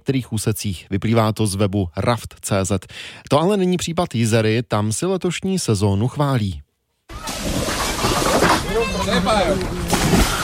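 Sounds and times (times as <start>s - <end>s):
speech: 0.1s - 6.6s, 9.0s - 10.2s
river water sloshing and splashing around canoes and rafts: 7.1s - 10.4s
voices of canoeists and swimmers calling and chattering: 7.1s - 10.4s.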